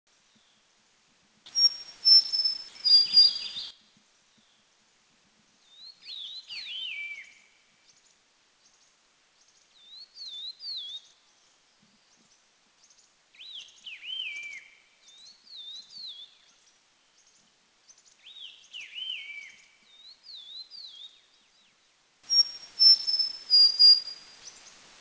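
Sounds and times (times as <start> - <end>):
Large-billed Leaf Warbler singing in Dirang India: 1.5 - 3.8, 5.7 - 8.0, 13.4 - 21.7, 22.3 - 24.8.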